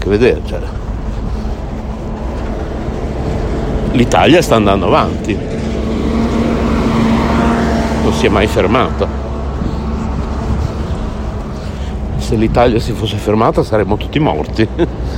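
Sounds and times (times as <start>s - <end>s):
bus engine rumbling past: 0.0s - 15.1s
speech: 0.1s - 0.8s, 3.9s - 5.7s, 8.0s - 9.2s, 12.3s - 15.1s.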